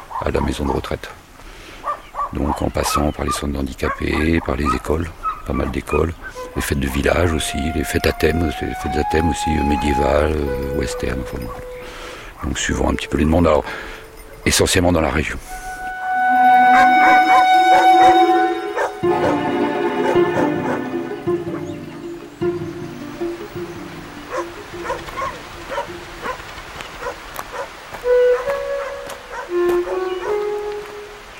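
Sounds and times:
speech: 0:00.2 - 0:01.2, 0:02.3 - 0:15.6
several dogs barking and yipping: 0:01.8 - 0:06.7, 0:11.0 - 0:14.5, 0:16.5 - 0:22.4, 0:24.1 - 0:30.8
high whining and yelping of dogs: 0:04.6 - 0:06.6, 0:11.2 - 0:12.7, 0:16.6 - 0:22.3, 0:24.3 - 0:30.6.

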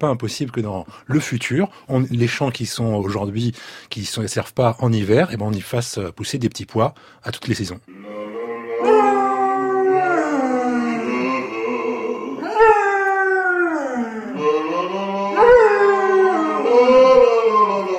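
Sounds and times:
speech: 0:00.0 - 0:08.4
dog howling: 0:07.9 - 0:17.9.

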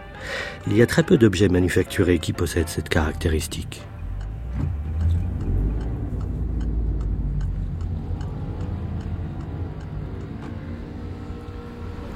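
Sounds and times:
speech: 0:00.6 - 0:03.9
faint regular ticking: 0:03.4 - 0:11.5
grey BMW 520d E39 estate car engine running: 0:04.0 - 0:12.1.

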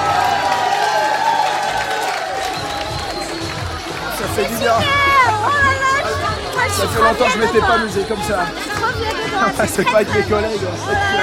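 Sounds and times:
applause in an ovation after a sung number: 0:00.0 - 0:04.7
crowd cheering and whooping in an ovation at a performance: 0:00.0 - 0:09.4
speech: 0:04.4 - 0:06.0, 0:06.6 - 0:11.2.

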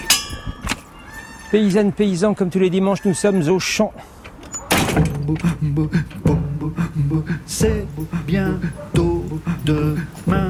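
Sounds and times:
speech: 0:01.5 - 0:04.2, 0:05.0 - 0:10.4
wooden door banging as it is opened and closed: 0:04.4 - 0:05.4.

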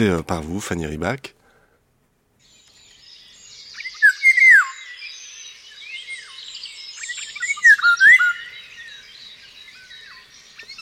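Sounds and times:
speech: 0:00.0 - 0:01.4
faint high chirping or insect-like buzzing: 0:02.4 - 0:10.8
Eurasian golden oriole fluting whistled song: 0:02.5 - 0:10.8.

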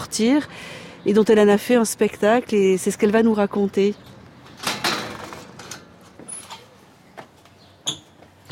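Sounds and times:
speech: 0:00.1 - 0:04.2
door being opened with clicks and rattles: 0:04.6 - 0:05.9
brief high door squeak: 0:07.8 - 0:08.4.

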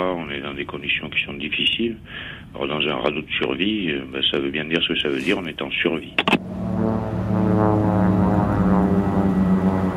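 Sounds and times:
speech: 0:00.0 - 0:08.0
Australian rescue services propeller aircraft passing overhead: 0:06.3 - 0:09.9.

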